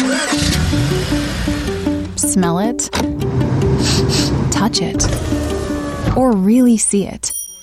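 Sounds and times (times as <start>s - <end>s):
car engine revving through gears: 0.0s - 2.3s, 3.0s - 6.2s
speech: 2.3s - 7.4s.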